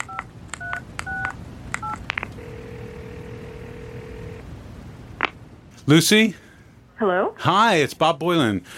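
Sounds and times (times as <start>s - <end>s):
faint hum: 0.0s - 8.7s
phone ringing tone: 0.1s - 4.4s
speech: 5.8s - 6.4s, 7.0s - 8.7s.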